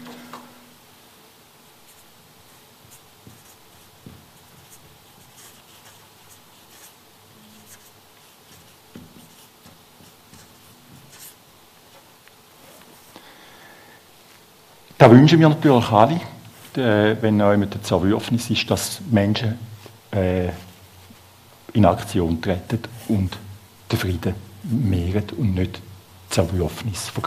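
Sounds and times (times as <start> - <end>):
pen writing on paper: 1.9 - 11.4
speech: 15.0 - 20.6, 21.8 - 27.2.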